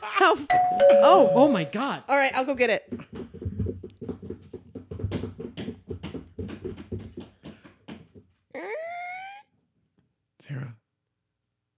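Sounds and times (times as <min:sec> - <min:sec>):
speech: 0:00.2 - 0:03.2
person dressed as a puppy imitating puppy whimpering: 0:08.6 - 0:09.5.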